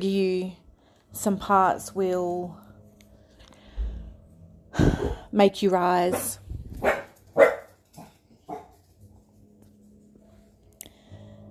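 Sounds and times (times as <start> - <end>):
speech: 0.0 - 2.6, 4.8 - 6.9
dog barking: 6.1 - 8.8.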